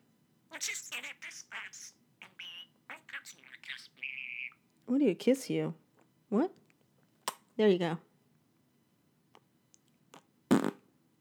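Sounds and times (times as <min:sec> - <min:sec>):
speech: 0:00.6 - 0:02.5, 0:03.1 - 0:06.6, 0:07.6 - 0:08.1
fart: 0:10.5 - 0:10.8.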